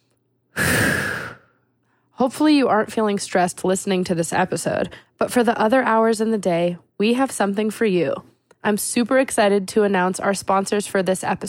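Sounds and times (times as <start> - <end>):
person taking a big deep breath with a sigh-like exhale: 0.6 - 1.6
speech: 2.2 - 11.4.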